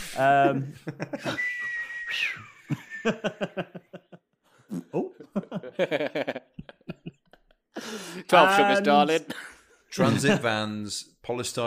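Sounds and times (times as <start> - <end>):
speech: 0.2 - 3.8, 5.8 - 6.1, 8.3 - 11.6
people chuckling: 0.5 - 1.6, 2.4 - 7.8
person vocally mimicking whistling air: 1.2 - 3.0.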